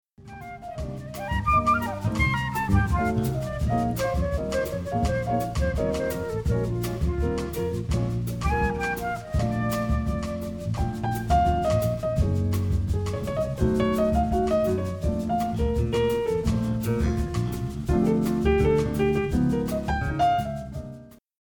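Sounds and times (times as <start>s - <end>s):
bossa nova music excerpt: 0.2s - 21.2s.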